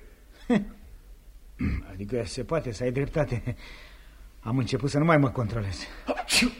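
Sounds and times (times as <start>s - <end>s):
speech: 2.0s - 6.5s
person sneezing: 6.0s - 6.5s.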